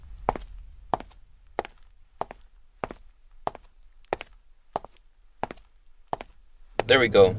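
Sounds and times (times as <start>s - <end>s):
footsteps of a person walking at a relaxed pace: 0.0s - 6.9s
speech: 6.9s - 7.3s.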